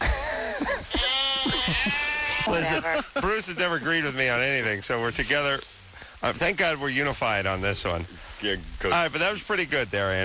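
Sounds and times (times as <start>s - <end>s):
sheep bleating: 0.9s - 3.2s
speech: 2.5s - 10.2s.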